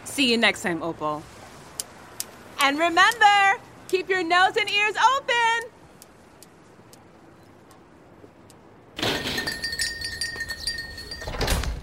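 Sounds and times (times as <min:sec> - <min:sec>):
speech: 0:00.2 - 0:01.4, 0:02.6 - 0:05.5
bookstore door bell jingling: 0:09.1 - 0:11.8.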